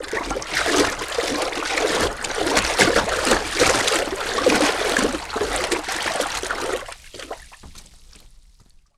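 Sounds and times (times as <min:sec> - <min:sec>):
water moving: 0:00.0 - 0:07.7.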